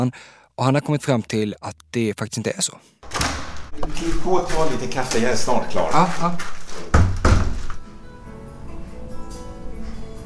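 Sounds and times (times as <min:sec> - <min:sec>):
speech: 0:00.0 - 0:07.0
door being opened by a man: 0:03.0 - 0:07.8.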